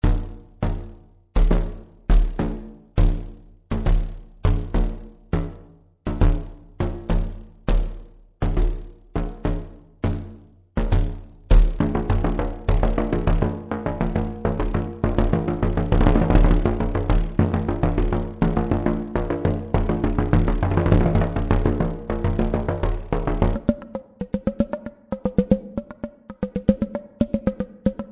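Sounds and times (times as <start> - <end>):
drum membrane: 0.0 - 28.0.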